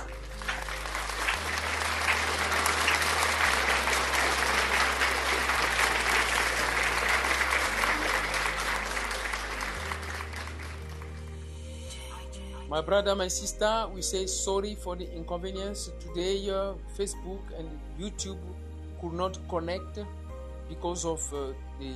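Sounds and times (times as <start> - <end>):
large congregation applauding: 0.0 - 11.4
speech: 12.8 - 21.9.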